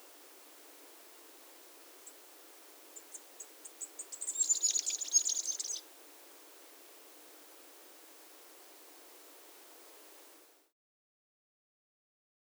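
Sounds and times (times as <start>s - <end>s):
steady background hiss: 0.0s - 10.6s
masked flowerpiercer Diglossa cyanea song phrase in Colombia: 2.9s - 5.9s.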